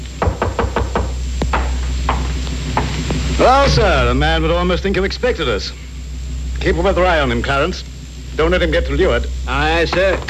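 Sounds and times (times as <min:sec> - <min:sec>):
knocking on a door: 0:00.2 - 0:02.9
speech: 0:03.4 - 0:05.9, 0:06.6 - 0:10.2.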